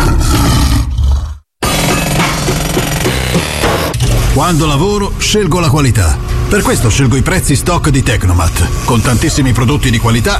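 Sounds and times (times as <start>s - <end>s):
lion roaring: 0.0s - 3.6s
speech: 4.4s - 10.3s.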